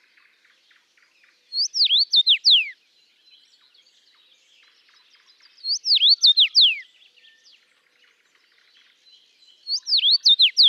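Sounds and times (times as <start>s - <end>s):
soft background bird chatter: 0.0s - 10.6s
common rosefinch Carpodacus erythrinus singing whistled phrase in Latvia: 1.5s - 3.5s, 5.6s - 7.5s, 9.4s - 10.6s.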